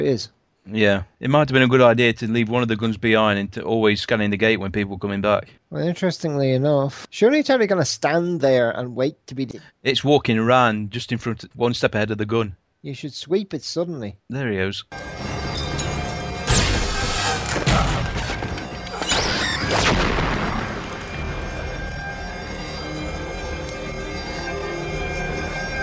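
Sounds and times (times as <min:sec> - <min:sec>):
speech: 0:00.0 - 0:15.3
video game glass breaking: 0:15.0 - 0:25.7
video game booming explosions: 0:16.0 - 0:24.2.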